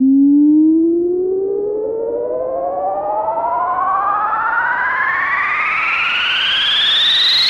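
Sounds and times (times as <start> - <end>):
rising sine tone: 0.0 - 7.4.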